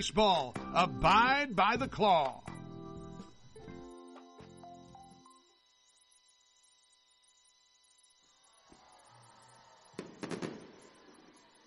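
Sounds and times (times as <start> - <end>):
speech: 0.0 - 2.5
low electrical hum: 0.0 - 10.0
fireworks popping: 10.0 - 11.4.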